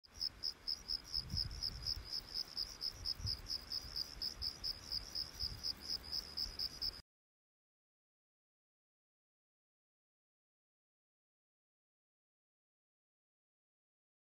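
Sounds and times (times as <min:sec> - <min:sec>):
crickets chirping: 0:00.1 - 0:07.0.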